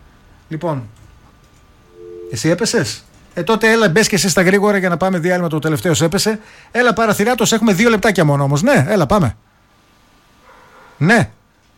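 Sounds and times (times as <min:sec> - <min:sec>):
faint steady hum: 0:00.0 - 0:11.7
speech: 0:00.5 - 0:01.0, 0:02.3 - 0:09.4, 0:11.0 - 0:11.4
dog barking on a caller's phone line: 0:10.4 - 0:11.0.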